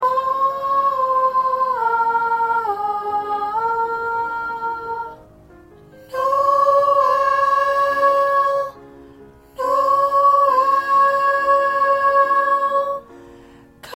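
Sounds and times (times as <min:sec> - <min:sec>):
soprano singing: 0:00.0 - 0:13.9.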